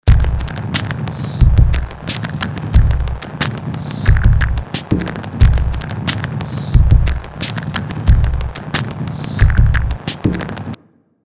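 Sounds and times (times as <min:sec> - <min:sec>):
minimal static: 0:00.1 - 0:10.2.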